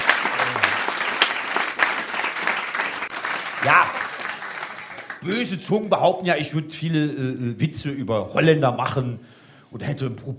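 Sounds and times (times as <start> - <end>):
audience clapping: 0.0 - 5.4
speech: 3.6 - 4.0, 5.2 - 10.3.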